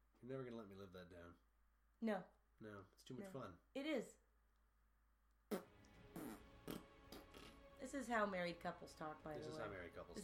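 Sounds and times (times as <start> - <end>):
speech: 0.2 - 4.2, 7.8 - 10.2
wet mouth-made fart noises or raspberries: 5.5 - 7.8.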